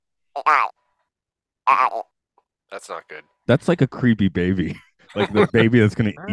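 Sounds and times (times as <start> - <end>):
voice imitating a duck saying I love you: 0.4 - 0.7, 1.7 - 2.1
speech: 0.4 - 0.8, 1.6 - 2.1, 2.7 - 6.3
laughter: 4.6 - 6.3.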